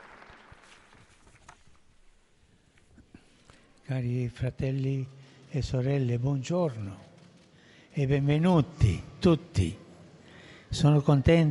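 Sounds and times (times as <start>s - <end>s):
crowd applauding in welcome: 0.0s - 1.6s
speech: 3.9s - 7.1s, 8.0s - 9.8s, 10.7s - 11.4s.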